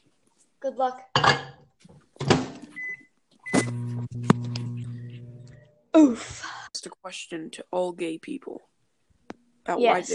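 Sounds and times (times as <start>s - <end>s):
speech: 0.6s - 1.5s, 6.0s - 8.7s, 9.6s - 10.1s
microwave oven running with steady low electrical hum: 3.5s - 5.9s.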